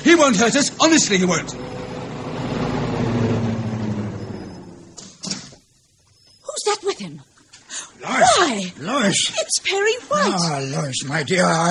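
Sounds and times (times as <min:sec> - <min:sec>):
speech: 0:00.2 - 0:01.9, 0:08.5 - 0:11.6
car engine rumbling as the car approaches: 0:00.3 - 0:05.0.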